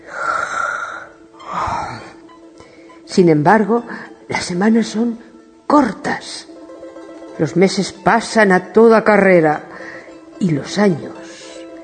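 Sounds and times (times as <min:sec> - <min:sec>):
person yawning: 0:00.0 - 0:02.3
speech: 0:03.2 - 0:06.5, 0:07.4 - 0:09.7, 0:10.4 - 0:11.2.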